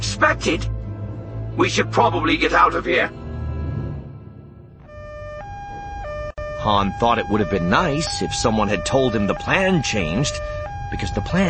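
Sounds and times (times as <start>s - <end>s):
speech: 0.2s - 0.8s, 1.6s - 3.2s, 6.6s - 11.4s
alarm siren alternating between two tones: 4.7s - 11.4s.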